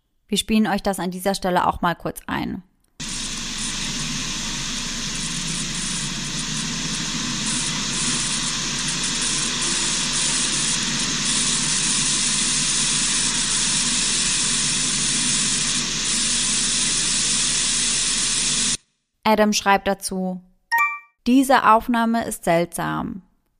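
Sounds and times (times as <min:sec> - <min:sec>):
speech: 0:00.3 - 0:02.7, 0:19.3 - 0:20.5, 0:21.3 - 0:23.3
low hum: 0:03.0 - 0:12.8
harsh electrical static hiss: 0:03.0 - 0:18.8.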